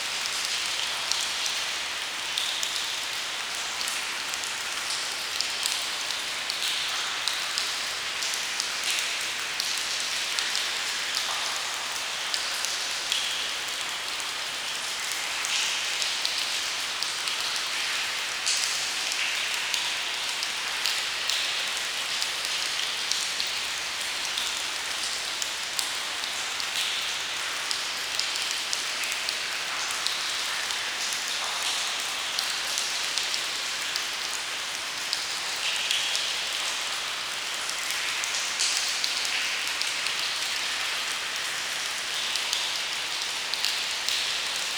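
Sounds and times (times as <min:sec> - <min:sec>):
water trickling in a cave: 0:00.0 - 0:44.7.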